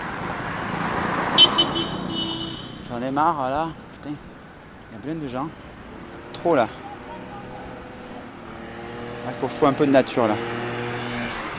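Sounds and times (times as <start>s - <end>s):
continuous roar of car traffic rolling past: 0.0s - 11.5s
quick sharp car horn toots: 1.3s - 2.9s
speech: 3.0s - 4.3s, 4.9s - 5.7s, 6.4s - 6.8s, 9.3s - 10.8s.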